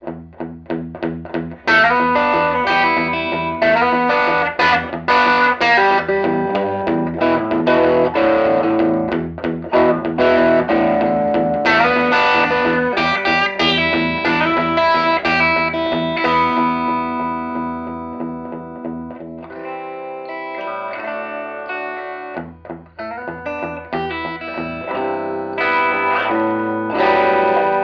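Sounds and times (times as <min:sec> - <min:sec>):
amplified bridge pickup: 0:00.0 - 0:27.8.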